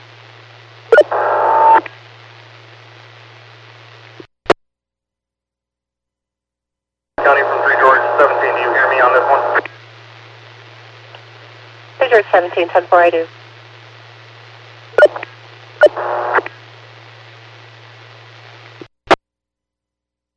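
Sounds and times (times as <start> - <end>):
harsh radio static: 1.0 - 1.8, 7.2 - 17.3
garbled unintelligible radio transmission: 7.2 - 9.8, 12.0 - 13.3
speech: 12.4 - 13.4.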